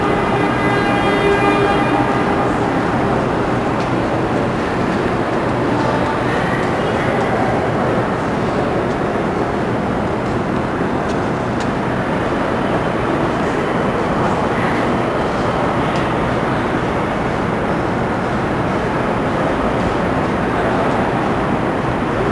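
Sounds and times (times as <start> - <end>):
outdoor ambience at a memorial exterior: 0.0 - 22.2.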